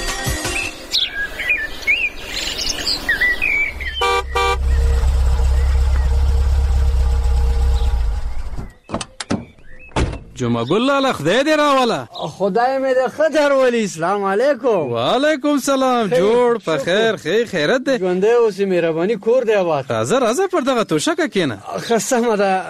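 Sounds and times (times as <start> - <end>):
birds chirping: 0.1 - 18.6
car engine idling: 3.7 - 8.7
speech: 10.4 - 22.6.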